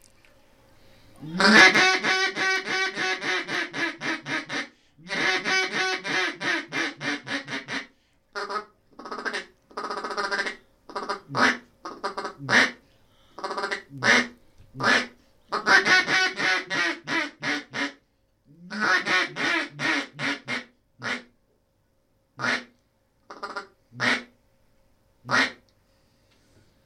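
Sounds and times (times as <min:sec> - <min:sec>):
wooden duck call with tone board and cellulite reed blown, raspy quacks: 0:01.3 - 0:12.8, 0:13.4 - 0:18.0, 0:18.6 - 0:21.3, 0:22.4 - 0:22.7, 0:23.3 - 0:24.3, 0:25.3 - 0:25.6.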